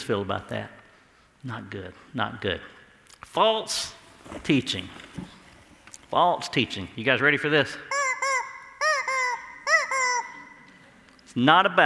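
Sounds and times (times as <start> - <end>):
speech: 0.0 - 0.8, 1.4 - 5.3, 6.1 - 7.9, 11.4 - 11.8
rubber chicken squeezed, squawking: 7.8 - 10.8.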